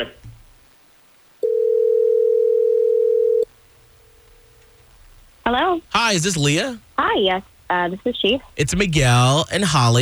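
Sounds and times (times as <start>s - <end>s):
telephone ringing on an outgoing call: 1.4s - 3.4s
speech: 6.1s - 10.0s.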